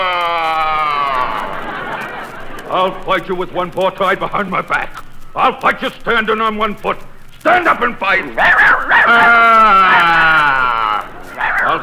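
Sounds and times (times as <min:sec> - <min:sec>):
laughter: 0:00.0 - 0:05.0, 0:07.6 - 0:11.8
speech: 0:02.7 - 0:10.6
little dog whining yelp: 0:08.4 - 0:10.4.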